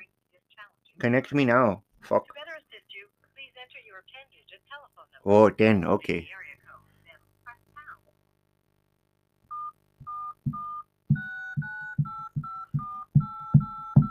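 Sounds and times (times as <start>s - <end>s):
speech: 1.0s - 2.5s, 5.2s - 6.4s
phone keypad beeps dialing a phone number: 9.5s - 14.1s.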